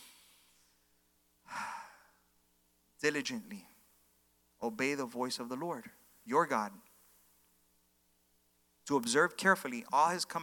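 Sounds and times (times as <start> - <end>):
slow deep breath: 0.0 - 2.3
speech: 3.0 - 3.7, 4.6 - 6.9, 8.9 - 10.4.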